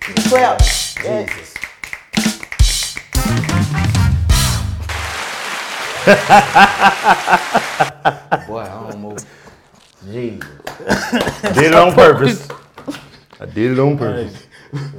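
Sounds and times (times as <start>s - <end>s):
clapping applause: 0.0s - 8.0s, 10.4s - 13.2s
speech: 0.1s - 1.6s, 6.0s - 14.9s
people laughing: 5.8s - 9.2s, 10.8s - 13.2s.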